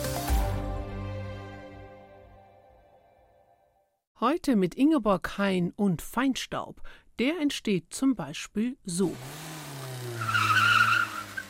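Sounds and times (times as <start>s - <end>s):
speech: 4.2s - 9.4s
car tires squealing while skidding: 9.2s - 11.4s.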